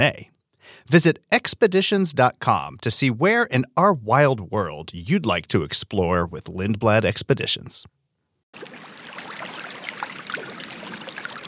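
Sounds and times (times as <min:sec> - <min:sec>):
speech: 0:00.0 - 0:08.9
water flowing and trickling over stones: 0:08.6 - 0:11.4.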